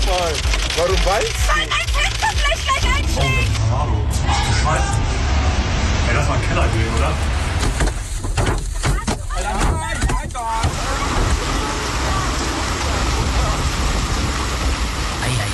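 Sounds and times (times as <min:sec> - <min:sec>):
large hailstones pounding a car windshield while driving: 0:00.0 - 0:03.4, 0:07.6 - 0:15.4
speech: 0:00.2 - 0:05.1, 0:06.1 - 0:07.4.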